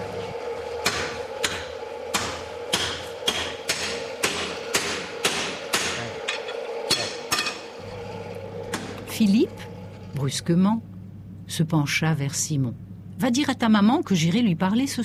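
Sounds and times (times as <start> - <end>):
blacksmiths' hammers striking metal on anvil: 0.8 - 7.6
speech: 9.2 - 10.9, 11.5 - 15.0.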